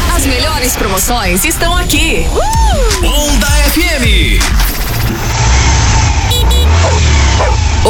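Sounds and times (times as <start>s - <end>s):
speech: 0.6s - 5.6s
motorcycle engine revving: 4.0s - 7.8s.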